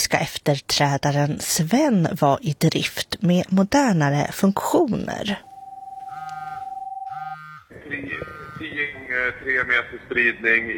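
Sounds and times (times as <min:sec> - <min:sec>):
speech: 0:00.1 - 0:05.5, 0:07.9 - 0:10.7
Rakel emergency radio terminal alarm beep: 0:05.4 - 0:08.6
buzzy pulsing tones from Rakel emergency radio terminal: 0:06.1 - 0:08.7.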